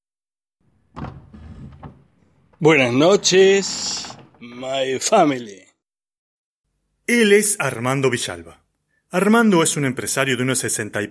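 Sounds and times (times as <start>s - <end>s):
door sliding open: 0.8s - 4.8s
speech: 2.6s - 5.6s, 7.1s - 11.1s.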